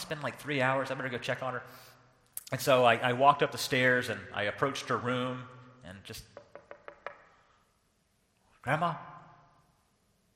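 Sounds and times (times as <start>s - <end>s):
speech: 0.1s - 6.4s, 8.6s - 9.1s
quick knocks on a door with hollow ring: 6.4s - 7.3s.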